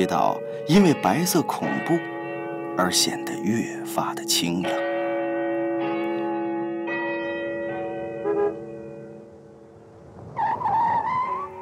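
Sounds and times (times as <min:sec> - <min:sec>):
speech: 0:00.0 - 0:02.2, 0:02.8 - 0:04.9
large clock tower bell tolling by the river in Shanghai: 0:00.0 - 0:10.4
small car pulling up with a rising squeal: 0:10.4 - 0:11.6.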